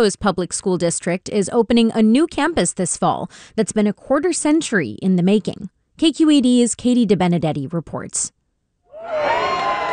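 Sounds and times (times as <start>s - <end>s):
speech: 0.0s - 8.4s, 9.0s - 9.6s
young kindergarten children cheering and shouting at a new school opening: 8.9s - 9.9s.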